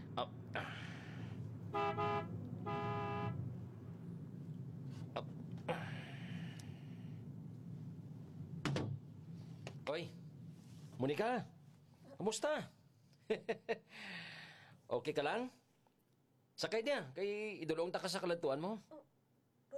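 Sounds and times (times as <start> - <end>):
low vehicle rumble: 0.0 - 12.0
speech: 0.2 - 0.9, 9.9 - 10.2, 11.0 - 11.6, 12.2 - 14.3, 14.9 - 15.6, 16.6 - 19.1
car horn honking on a road: 1.7 - 3.6.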